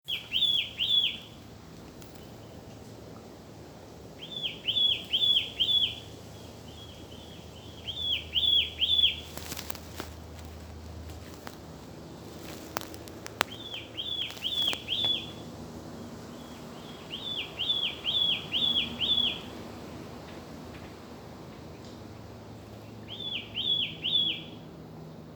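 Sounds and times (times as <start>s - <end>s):
Broad-billed Flycatcher Myiagra ruficollis mimikae: 0.0s - 1.4s, 4.2s - 10.5s, 12.4s - 20.0s, 22.7s - 24.6s.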